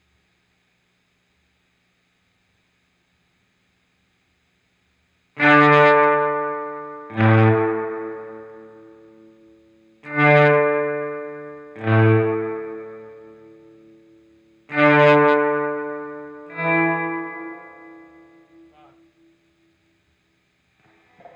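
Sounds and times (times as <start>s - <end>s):
guitar volume swell: 5.6s - 9.4s, 10.0s - 19.0s.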